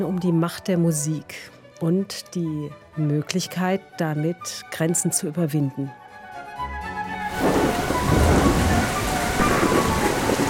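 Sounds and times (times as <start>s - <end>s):
speech: 0.0s - 6.0s
low rumble of thunder: 7.3s - 10.4s
rain pattering outdoors in Schwetzingen during music festival: 7.3s - 10.4s.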